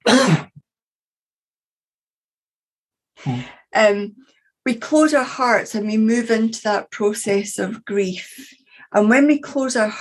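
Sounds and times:
person coughing harshly: 0:00.0 - 0:00.6
speech: 0:03.2 - 0:10.0.

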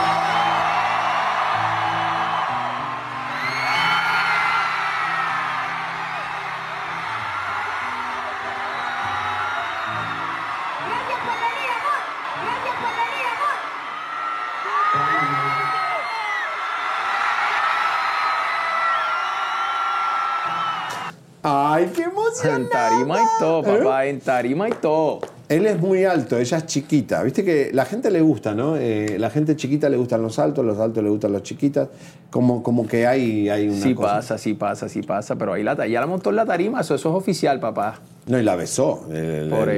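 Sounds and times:
large concert crowd screaming and cheering with high-pitched shrieks and whoops: 0:00.0 - 0:21.2
speech: 0:21.8 - 0:39.7.

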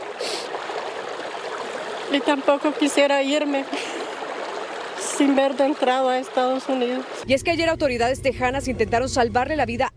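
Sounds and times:
brief brighter water splash: 0:00.0 - 0:07.2
strong river current rushing: 0:00.0 - 0:07.2
speech: 0:02.1 - 0:03.8, 0:05.2 - 0:09.9.

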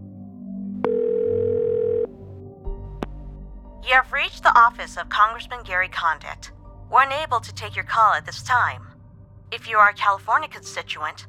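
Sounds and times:
steady electronic telephone ringing tone: 0:00.9 - 0:02.1
speech: 0:03.9 - 0:08.9, 0:09.5 - 0:11.2.

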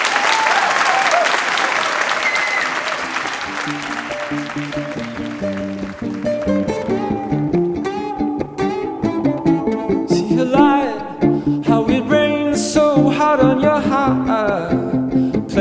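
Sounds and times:
large audience applauding a solo musician on stage: 0:00.0 - 0:08.2
plucked and bowed musical notes: 0:03.4 - 0:15.6.

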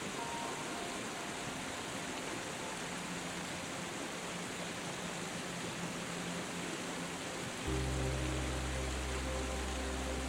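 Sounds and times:
soft sustained music notes: 0:00.0 - 0:10.2
waterfall rushing: 0:00.0 - 0:10.2
deep warm low tones: 0:07.6 - 0:10.2.

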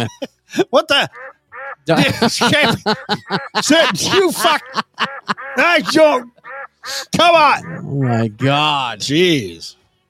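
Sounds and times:
laughter: 0:00.0 - 0:01.1, 0:01.9 - 0:08.7
speech: 0:00.0 - 0:09.8
person imitating nasal squawky duck quacks: 0:03.0 - 0:08.6.

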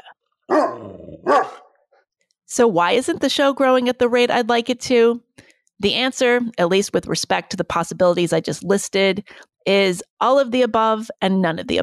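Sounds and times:
dog barking: 0:00.5 - 0:01.7
low drawn-out growl-like tone: 0:00.8 - 0:01.3
speech: 0:02.5 - 0:05.2, 0:05.8 - 0:11.8.

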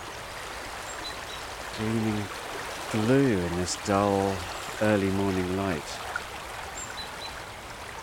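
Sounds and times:
full, fast-flowing river rushing: 0:00.0 - 0:08.0
speech: 0:01.8 - 0:06.1.

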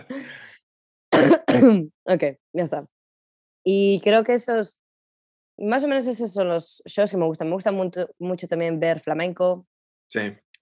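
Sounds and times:
person coughing: 0:01.2 - 0:01.9
speech: 0:01.2 - 0:03.0, 0:03.6 - 0:04.8, 0:05.6 - 0:10.6.

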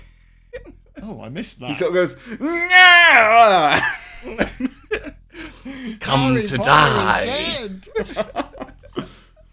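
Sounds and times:
speech: 0:01.0 - 0:05.1, 0:05.7 - 0:08.4
voice mimicking a dancer's drawn-out wailing cry: 0:02.4 - 0:04.4, 0:06.0 - 0:08.0
laughter: 0:03.6 - 0:05.1, 0:06.0 - 0:09.2.

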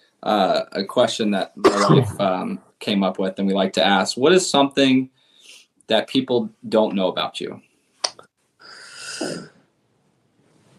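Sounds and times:
speech: 0:00.2 - 0:05.2, 0:05.9 - 0:07.7, 0:09.2 - 0:09.5
person getting over an illness coughing: 0:01.6 - 0:02.5, 0:09.2 - 0:09.5
person getting over an illness clearing throat and bringing up phlegm: 0:01.6 - 0:02.6, 0:09.2 - 0:09.5.

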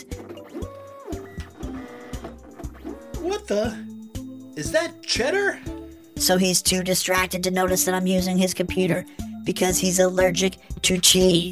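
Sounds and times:
computer printer printing with stepped motor tones and feed clunks: 0:00.1 - 0:03.4
speech: 0:03.2 - 0:03.9, 0:04.6 - 0:11.4.

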